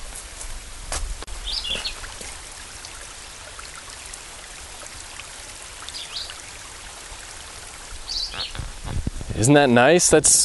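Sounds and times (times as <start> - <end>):
creek water flowing: 0.0 - 9.9
high bird chirps: 8.1 - 8.6
speech: 9.4 - 10.4.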